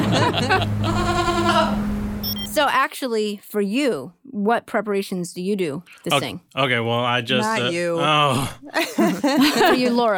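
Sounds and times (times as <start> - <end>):
laughter: 0.0 - 1.8, 8.7 - 10.1
speech: 0.2 - 1.9, 2.6 - 10.1
goat bleating: 0.8 - 1.9.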